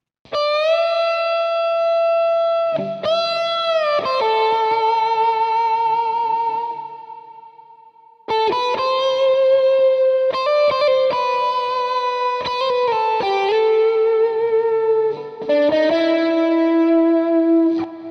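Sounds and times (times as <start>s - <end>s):
electric guitar with heavy distortion playing a song intro: 0.3s - 18.1s.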